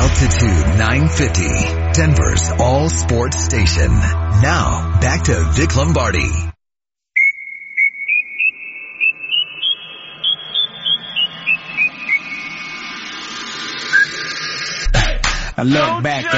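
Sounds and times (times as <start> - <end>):
speech: 0.2 - 6.5, 15.6 - 16.3
whistled tune: 7.2 - 12.8, 13.9 - 14.2.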